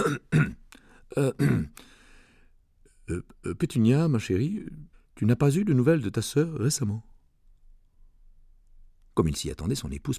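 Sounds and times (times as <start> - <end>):
nervous man clearing his throat: 0.0 - 1.8
speech: 1.2 - 1.9, 3.1 - 7.1, 9.2 - 10.1.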